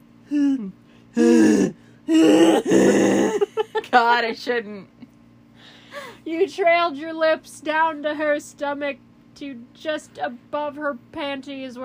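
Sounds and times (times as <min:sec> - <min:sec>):
speech: 0:00.3 - 0:01.7, 0:04.0 - 0:05.0, 0:06.2 - 0:11.8
woman gasping and moaning softly: 0:00.3 - 0:03.7.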